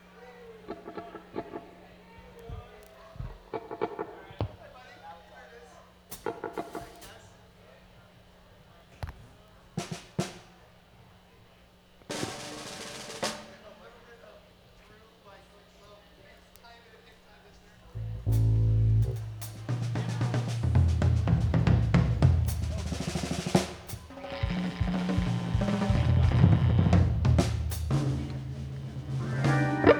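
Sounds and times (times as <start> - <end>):
instruments tuning for live music: 18.0 - 29.9
live music: 18.0 - 29.9.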